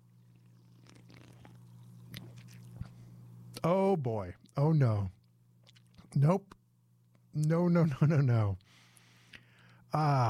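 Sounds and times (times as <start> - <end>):
quiet sip from a fizzy drink: 0.3 - 2.9
speech: 3.6 - 5.2, 6.2 - 6.6, 7.4 - 8.8, 9.9 - 10.2.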